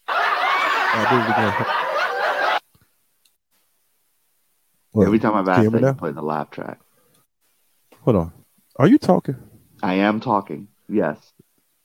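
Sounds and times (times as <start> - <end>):
sitcom-style canned laugh track: 0.0 - 2.6
speech: 1.0 - 1.9, 4.9 - 6.8, 8.0 - 11.4.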